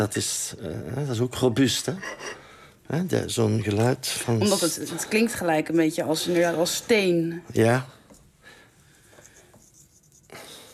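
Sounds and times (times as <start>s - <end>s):
speech: 0.0s - 8.0s
pen scratching on paper in handwriting: 9.4s - 10.7s.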